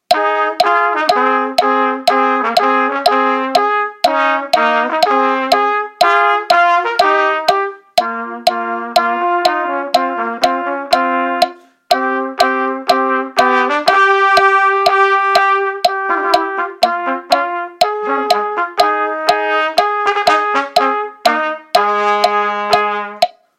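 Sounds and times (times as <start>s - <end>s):
trumpet duet with both parts: 0.0s - 23.5s.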